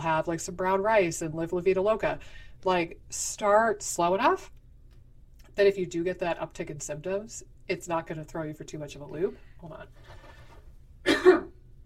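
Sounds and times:
speech: 0.0 - 4.6, 5.6 - 10.2
throat clearing cough caused by a tickle in the throat: 11.0 - 11.6.

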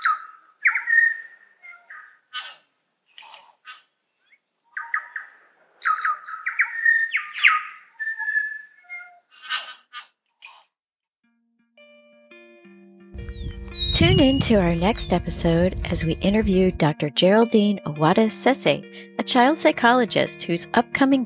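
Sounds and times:
New Zealand Bellbird song of ringing whistles and clicky notes in native forest: 0.0 - 2.1, 4.8 - 9.1, 13.2 - 15.2
steady-toned sound: 13.2 - 16.9
speech: 14.0 - 21.2.

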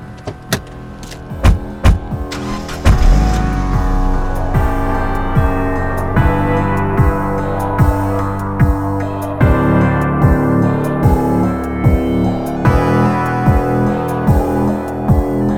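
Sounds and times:
car doors clunking: 0.0 - 4.2
car engine running: 0.0 - 15.4
scattered knocks: 1.4 - 2.2.

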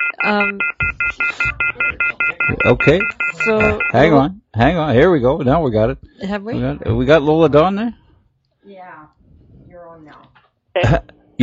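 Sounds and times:
telephone busy signal tone pulses: 0.0 - 4.0
speech: 0.1 - 8.0, 10.8 - 11.4.

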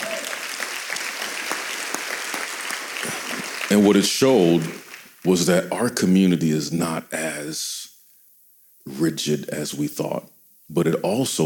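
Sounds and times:
audience applause: 0.0 - 5.4
speech: 3.7 - 7.8, 8.8 - 11.4.

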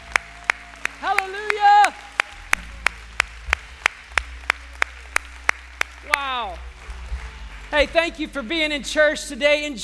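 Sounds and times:
church audience clapping in unison as praise: 0.0 - 8.8
speech: 7.7 - 9.8.

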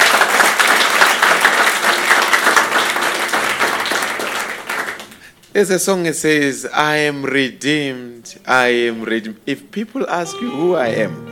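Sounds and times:
sustained applause from a large audience: 0.0 - 5.3
speech: 5.6 - 11.3.

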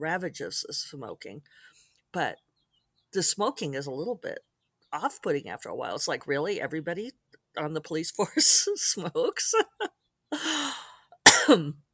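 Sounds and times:
speech: 0.0 - 2.5, 3.1 - 10.5, 11.5 - 11.8
person coughing with hacking and raspy coughs: 11.3 - 11.7.

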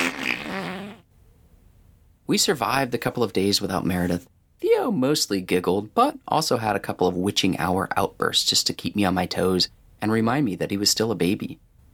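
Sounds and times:
person blowing a mouth fart at a baby: 0.0 - 1.1
speech: 2.3 - 11.7.

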